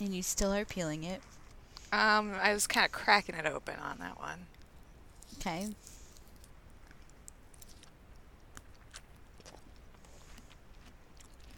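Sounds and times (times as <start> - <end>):
speech: 0.0 - 4.6, 5.3 - 6.0
faint steady hiss: 0.0 - 11.5
quiet chewing of something sweet with soft crunches: 4.5 - 11.5.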